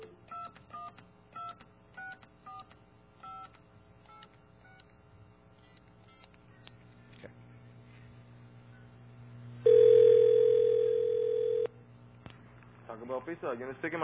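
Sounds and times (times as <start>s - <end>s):
faint low hum: 1.6s - 14.0s
loud steady telephone tone: 9.6s - 11.7s
speech: 13.1s - 14.0s.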